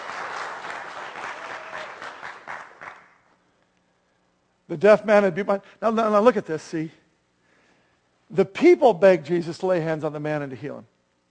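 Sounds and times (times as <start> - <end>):
audience clapping: 0.0 - 3.3
speech: 4.7 - 7.0, 8.3 - 10.9.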